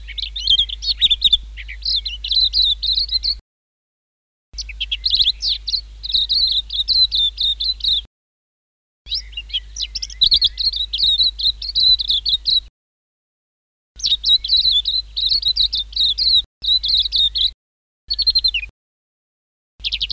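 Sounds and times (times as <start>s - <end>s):
white-eye song of quick high twittering and slurred whistled notes: 0.0s - 3.4s, 4.6s - 8.1s, 9.1s - 12.7s, 14.0s - 18.7s.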